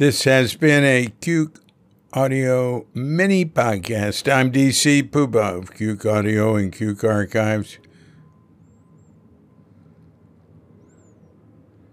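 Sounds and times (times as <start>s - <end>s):
speech: 0.0s - 7.8s
airplane flying overhead: 5.7s - 11.9s
faint bird chirps: 7.8s - 11.9s.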